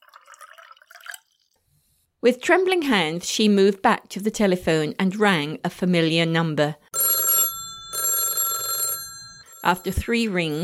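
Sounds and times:
drink poured from a decanter into a glass: 0.0s - 1.6s
speech: 2.2s - 6.9s, 9.6s - 10.6s.

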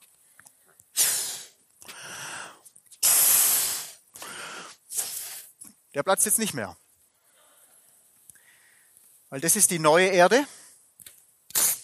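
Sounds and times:
balloon being blown up with breathy puffs of air: 0.9s - 2.0s, 3.0s - 4.0s, 4.7s - 5.6s, 11.5s - 11.8s
speech: 6.0s - 6.8s, 9.3s - 10.6s.

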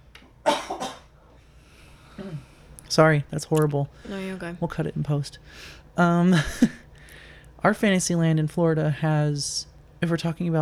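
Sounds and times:
person clearing throat: 0.4s - 1.1s, 2.2s - 2.5s
speech: 2.9s - 6.8s, 7.6s - 10.5s.

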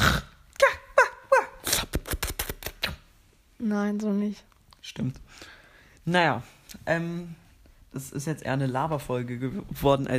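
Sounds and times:
person imitating a barking dachshund: 0.0s - 2.1s
speech: 3.6s - 10.1s.

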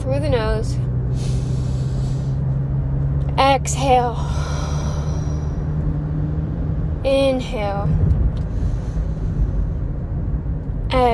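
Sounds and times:
road and engine rumble inside a moving car's cabin: 0.0s - 11.1s
speech: 0.1s - 1.4s, 3.4s - 4.5s, 7.0s - 8.1s, 10.9s - 11.1s.

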